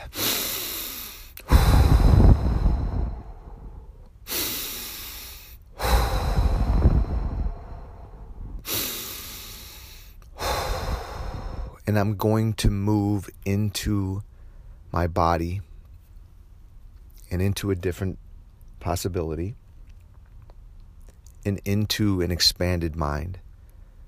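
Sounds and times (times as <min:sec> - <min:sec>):
deep breaths taken slowly: 0:00.0 - 0:11.8, 0:14.3 - 0:14.9
speech: 0:11.9 - 0:14.3, 0:14.9 - 0:15.7, 0:17.3 - 0:18.2, 0:18.8 - 0:19.6, 0:21.4 - 0:23.4.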